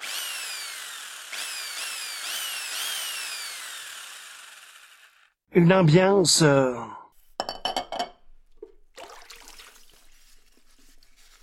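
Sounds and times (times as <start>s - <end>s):
electric drill whining: 0.0s - 5.4s
speech: 5.6s - 7.0s.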